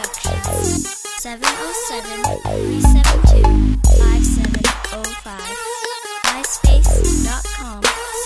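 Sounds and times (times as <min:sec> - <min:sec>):
mob style 808 bass beat: 0:00.3 - 0:00.9, 0:02.3 - 0:05.0, 0:06.7 - 0:07.7.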